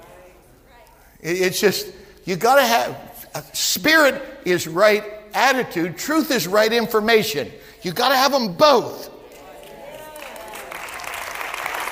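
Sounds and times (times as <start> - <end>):
speech: 1.2 - 9.1
light polite golf-clap applause from a small audience: 9.6 - 11.9.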